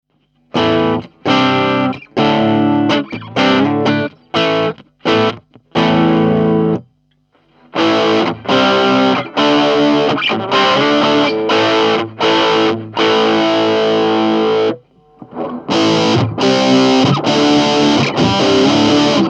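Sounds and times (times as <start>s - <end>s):
bridge humbucker guitar clean with drive and distortion: 0.1s - 19.2s.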